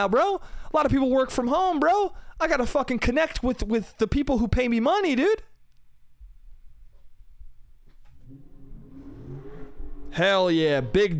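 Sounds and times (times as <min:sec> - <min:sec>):
speech: 0:00.0 - 0:05.5, 0:10.1 - 0:11.1
car engine revving on a street: 0:08.1 - 0:11.1.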